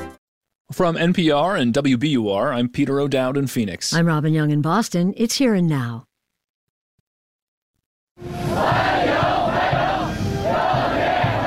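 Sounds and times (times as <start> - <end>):
speech: 0.7 - 6.1
teenagers chanting a welcome in unison: 8.3 - 11.4.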